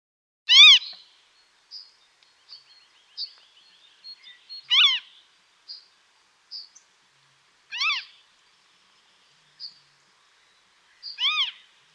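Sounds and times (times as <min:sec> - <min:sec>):
Western marsh harrier mewing calls: 0:04.7 - 0:05.1, 0:07.7 - 0:08.2, 0:11.2 - 0:11.6.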